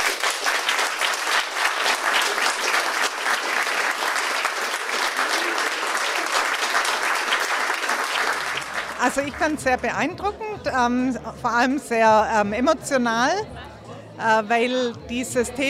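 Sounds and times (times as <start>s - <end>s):
audience applauding the cast and crew of a film project: 0.0s - 9.6s
speech: 9.1s - 13.6s, 14.2s - 15.6s.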